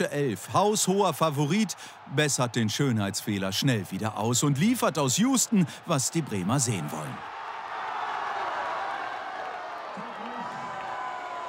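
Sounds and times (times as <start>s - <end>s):
speech: 0.0s - 7.3s
large crowd applause and cheering after goal: 0.0s - 11.4s.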